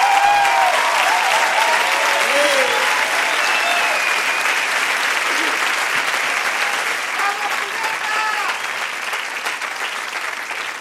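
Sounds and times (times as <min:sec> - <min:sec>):
scattered cheers and whistles from audience: 0:00.0 - 0:05.0
large audience clapping for a guest singer: 0:00.0 - 0:10.7.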